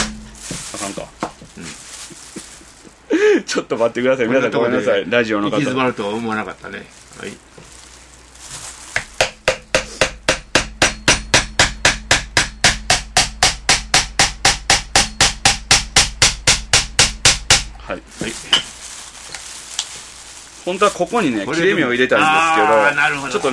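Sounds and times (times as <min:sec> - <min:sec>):
hard hammer blows on an object: 0:00.0 - 0:01.0, 0:09.2 - 0:17.8
speech: 0:03.5 - 0:07.5, 0:17.9 - 0:18.7, 0:20.7 - 0:23.5.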